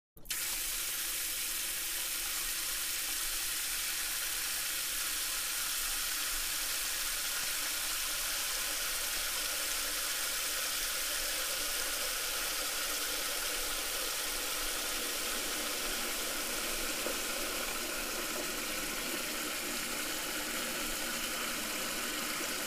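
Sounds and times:
water flowing into a metal sink: 0.2 - 22.6.

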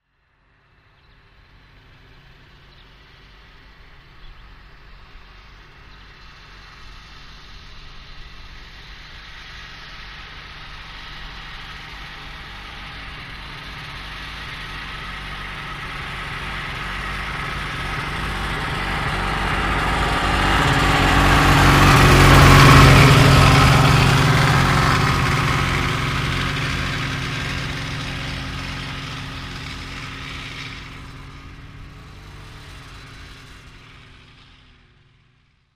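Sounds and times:
snowmobile passing by: 0.6 - 35.6.

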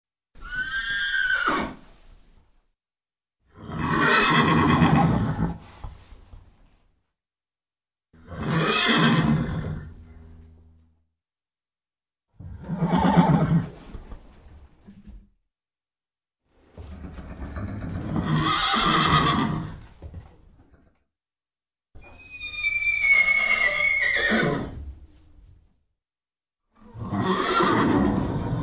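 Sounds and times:
horse whinnying: 0.4 - 1.9, 3.6 - 5.6, 8.2 - 10.0, 12.4 - 13.8, 17.0 - 19.9, 22.1 - 24.8, 26.9 - 28.6.

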